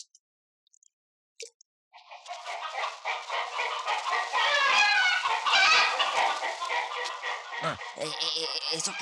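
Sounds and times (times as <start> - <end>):
flock of chickens clucking and squawking in a henhouse: 2.0 - 8.9
speech: 7.6 - 8.9.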